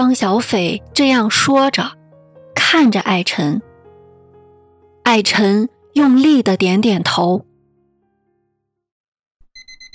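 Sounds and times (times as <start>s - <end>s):
speech: 0.0s - 2.0s, 2.7s - 3.7s, 5.0s - 7.5s
electronic alarm clock beeping: 9.4s - 9.9s.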